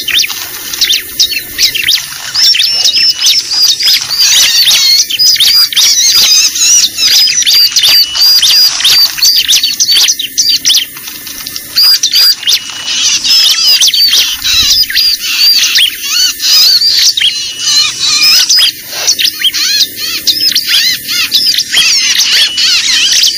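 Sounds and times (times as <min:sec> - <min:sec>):
lovebird chatter lure recording: 0:00.0 - 0:23.3.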